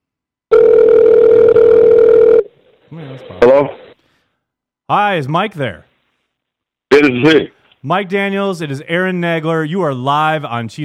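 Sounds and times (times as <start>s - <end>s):
telephone beep during an outgoing call to a busy line: 0.5s - 2.5s
speech: 3.2s - 3.8s, 4.9s - 5.9s, 6.9s - 10.8s.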